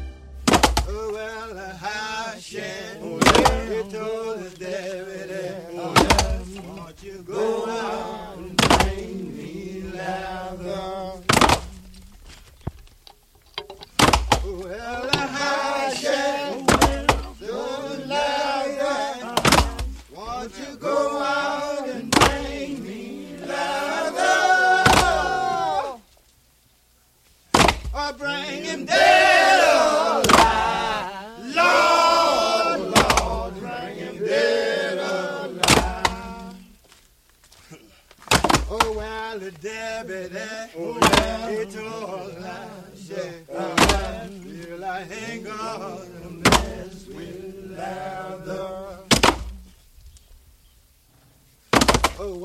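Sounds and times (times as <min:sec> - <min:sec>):
sharp pickaxe strikes: 0:00.4 - 0:01.0, 0:03.2 - 0:03.7, 0:06.0 - 0:06.4, 0:08.6 - 0:09.0, 0:11.3 - 0:11.8, 0:13.6 - 0:14.5, 0:16.7 - 0:17.4, 0:19.4 - 0:19.9, 0:22.1 - 0:22.5, 0:24.8 - 0:25.2, 0:27.5 - 0:28.0, 0:30.2 - 0:30.6, 0:32.9 - 0:33.4, 0:35.6 - 0:36.3, 0:38.2 - 0:39.0, 0:41.0 - 0:41.4, 0:43.8 - 0:44.2, 0:46.4 - 0:46.7, 0:49.1 - 0:49.6, 0:51.7 - 0:52.2
group of men singing a slow chain gang work song in unison: 0:00.5 - 0:12.4, 0:13.9 - 0:26.1, 0:27.6 - 0:36.9, 0:37.6 - 0:49.8, 0:51.8 - 0:52.4
speech: 0:01.5 - 0:08.6, 0:52.2 - 0:52.4.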